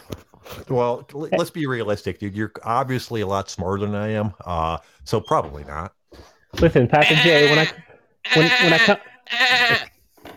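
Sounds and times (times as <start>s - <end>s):
speech: 0.7s - 9.9s
person imitating a goat's bleat with their mouth: 7.0s - 9.9s.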